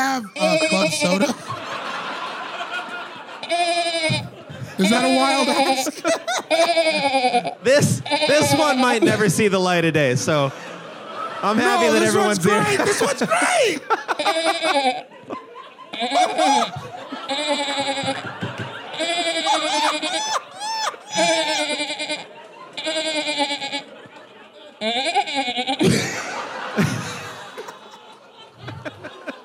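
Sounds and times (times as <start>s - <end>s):
speech: 0.2s - 1.4s, 4.8s - 10.7s, 11.4s - 15.4s, 16.0s - 18.4s, 21.2s - 24.0s, 24.8s - 27.1s
person imitating goat bleating with a cup: 0.3s - 1.4s, 3.4s - 9.0s, 14.2s - 15.0s, 16.0s - 18.2s, 19.0s - 22.2s, 22.8s - 23.9s, 24.8s - 25.8s
laughter: 0.4s - 29.4s.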